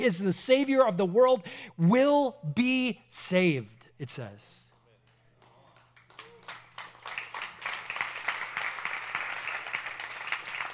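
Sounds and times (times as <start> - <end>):
speech: 0.0 - 4.6
audience applause: 5.7 - 10.7.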